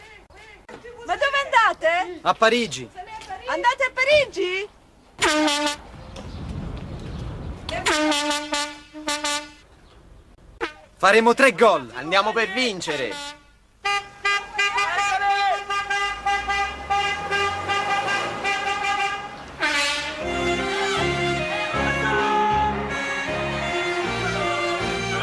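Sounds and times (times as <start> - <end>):
speech: 1.1 - 5.8, 7.7 - 8.7, 11.0 - 13.4
car horns honking in a convoy of fans' cars heading to Paris: 5.2 - 5.9, 7.8 - 9.7, 12.8 - 25.2.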